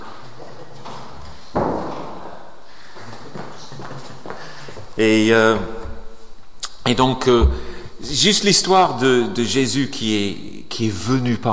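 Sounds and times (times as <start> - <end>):
speech: 5.0 - 5.8, 6.8 - 11.5
door swinging shut with a solid thud: 7.3 - 7.9.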